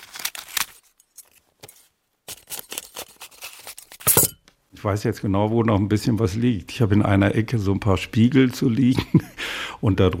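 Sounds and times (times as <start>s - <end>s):
scissors cutting a small notice out of a newspaper: 0.0s - 0.9s, 2.3s - 4.1s
speech: 4.8s - 10.1s.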